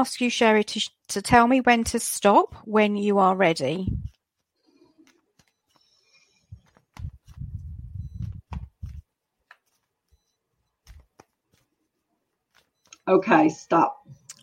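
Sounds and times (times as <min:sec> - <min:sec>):
speech: 0:00.0 - 0:04.1, 0:13.1 - 0:14.1
deck of tarot cards being shuffled: 0:03.8 - 0:12.9.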